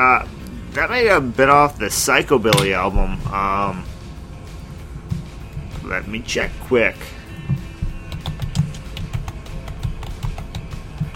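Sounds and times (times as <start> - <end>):
speech: 0.0 - 3.9, 5.9 - 7.2
typing on a computer keyboard: 8.1 - 11.1.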